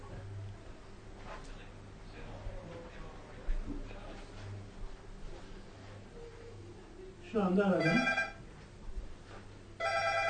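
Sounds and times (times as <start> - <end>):
faint murmuring voices: 0.0 - 10.0
cell phone ringing: 7.8 - 8.4, 9.8 - 10.2.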